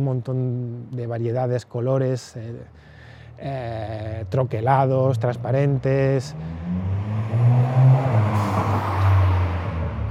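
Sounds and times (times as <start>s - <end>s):
speech: 0.0s - 6.9s
car passing by outside: 6.3s - 10.0s.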